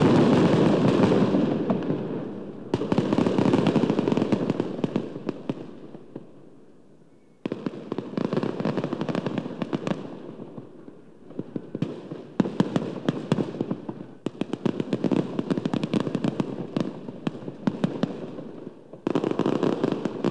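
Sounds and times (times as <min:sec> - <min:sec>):
distant fireworks: 0:00.0 - 0:06.7, 0:07.4 - 0:20.2.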